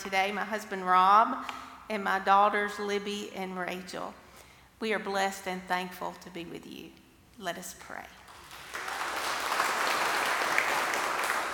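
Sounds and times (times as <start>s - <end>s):
speech: 0.0s - 4.2s, 4.8s - 8.2s
roomful of people clapping: 8.3s - 11.5s.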